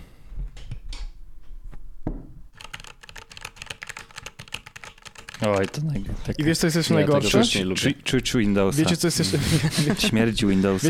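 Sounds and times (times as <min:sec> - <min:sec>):
typing on a mechanical computer keyboard: 0:02.6 - 0:05.8
speech: 0:05.4 - 0:10.8
laughter: 0:08.7 - 0:10.8.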